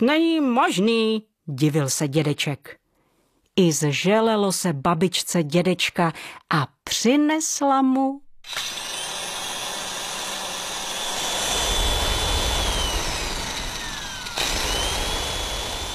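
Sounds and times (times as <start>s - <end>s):
speech: 0.0s - 2.8s, 3.6s - 8.8s
electric kitchen mixer whirring with high motor whine: 8.4s - 15.9s.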